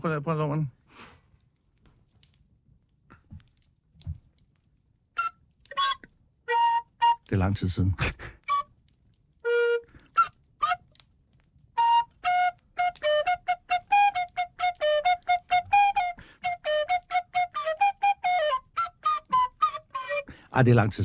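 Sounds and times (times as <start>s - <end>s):
speech: 0.0s - 1.2s, 7.3s - 8.3s, 20.6s - 21.0s
melody played on a whistle: 5.2s - 7.3s, 8.4s - 8.7s, 9.4s - 10.8s, 11.8s - 20.3s.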